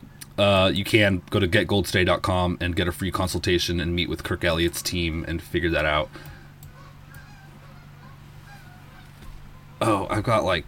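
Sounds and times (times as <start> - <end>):
steady low hum: 0.0 - 10.6
speech: 0.4 - 6.3, 9.8 - 10.6
flock of geese honking outside: 6.7 - 9.8.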